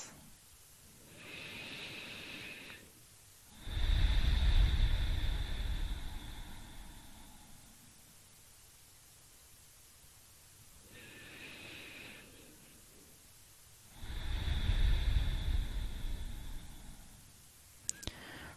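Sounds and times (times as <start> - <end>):
deep breathing in through the nose and out through the mouth: 0.0 - 8.2, 10.8 - 13.3, 13.9 - 17.4, 18.0 - 18.5.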